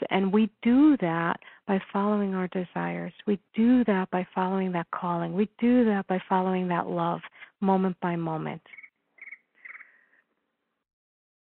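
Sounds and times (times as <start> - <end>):
speech: 0.1 - 8.8
iPhone timer alarm playing electronic cricket chirps: 8.7 - 10.0.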